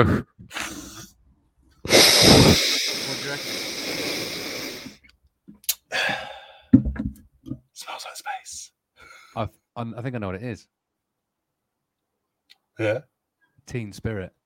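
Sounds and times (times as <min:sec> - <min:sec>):
speech: 0:00.0 - 0:00.8, 0:01.8 - 0:04.4, 0:09.4 - 0:10.7, 0:12.8 - 0:13.1, 0:13.7 - 0:14.4
person mimicking breathing through a diving regulator: 0:00.0 - 0:01.1, 0:01.9 - 0:05.0.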